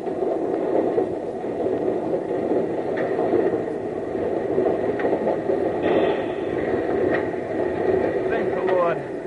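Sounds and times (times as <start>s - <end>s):
locomotive rumbling as it couples onto a train car: 0.0s - 9.2s.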